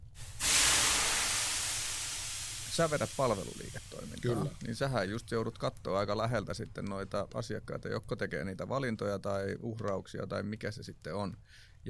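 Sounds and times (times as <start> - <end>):
steam hissing as water is thrown onto hot sauna stones: 0.0 - 5.5
speech: 2.8 - 11.8.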